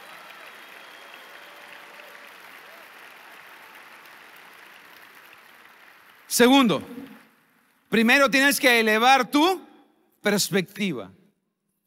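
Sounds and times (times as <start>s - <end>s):
large audience applause: 0.0s - 7.6s
speech: 6.3s - 7.0s, 7.9s - 9.6s, 10.2s - 11.2s.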